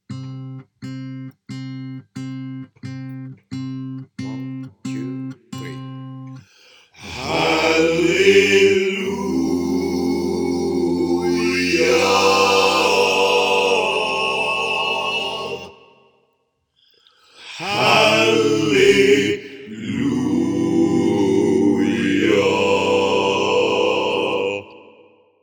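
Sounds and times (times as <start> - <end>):
choir singing all parts together: 7.0 - 16.0, 17.4 - 25.0.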